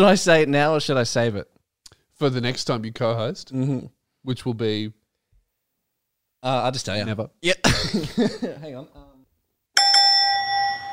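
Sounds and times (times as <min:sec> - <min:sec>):
speech: 0:00.0 - 0:01.6, 0:02.2 - 0:05.0, 0:06.4 - 0:09.0
laughter: 0:07.7 - 0:08.8
boxing-style fight bell ringing: 0:09.8 - 0:10.9.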